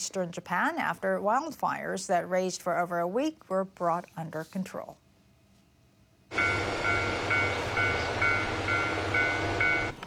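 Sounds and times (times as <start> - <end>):
speech: 0.0 - 5.0
rhythmic ringing tone: 6.3 - 10.0
train rumbling at a rural railway station: 6.3 - 10.0.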